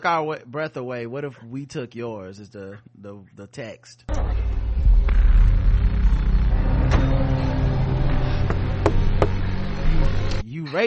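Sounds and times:
speech: 0.0s - 4.6s, 10.1s - 10.8s
car idling and pulling up: 4.1s - 10.4s.

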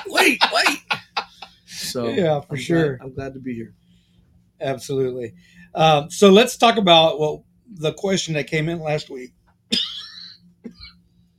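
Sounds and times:
laughter: 0.0s - 2.1s
low steady hum: 0.0s - 11.3s
speech: 0.2s - 0.8s, 2.0s - 3.8s, 4.6s - 9.4s
person coughing: 9.7s - 10.1s.

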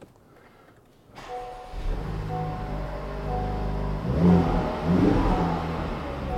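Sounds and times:
car engine starting up and revving indoors: 1.2s - 6.3s.

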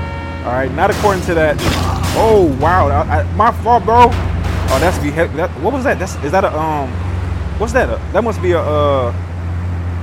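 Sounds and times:
armored money truck engine droning in a video game: 0.0s - 10.0s
speech: 0.4s - 7.0s, 7.6s - 9.3s.

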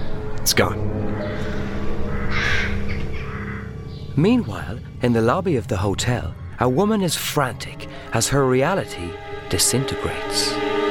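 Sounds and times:
steady low rumble: 0.1s - 9.5s
speech: 0.4s - 1.1s, 4.2s - 10.7s
crow cawing harshly: 1.0s - 4.1s.

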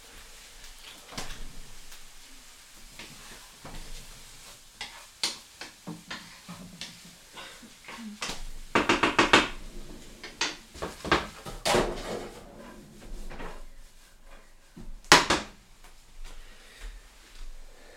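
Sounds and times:
pan shaken and tossed on a stovetop: 4.8s - 7.6s, 8.2s - 13.7s.

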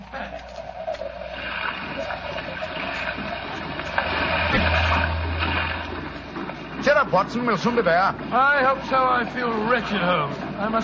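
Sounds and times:
churning rough sea water around a small boat: 0.0s - 10.8s
wind at sea: 0.0s - 10.8s
low droning rumble: 3.1s - 8.3s
speech: 7.1s - 10.8s.

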